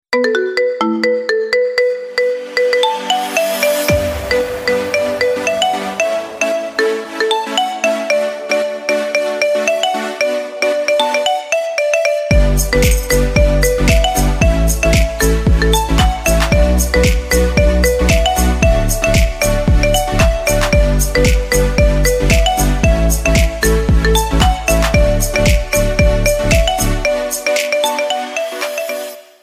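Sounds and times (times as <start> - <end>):
marimba remix ringtone: 0.1 - 29.4.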